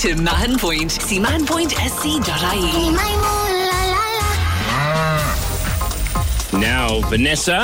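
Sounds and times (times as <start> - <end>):
speech: 0.0 - 3.5, 6.5 - 7.6
cow moo sound effect used in a radio cash prize game: 4.4 - 5.8.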